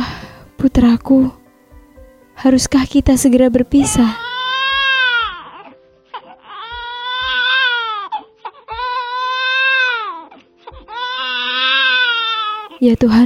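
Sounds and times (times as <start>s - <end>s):
speech: 0.7s - 1.4s, 2.4s - 4.2s, 12.8s - 13.2s
newborn baby boy wailing loudly: 3.8s - 12.8s.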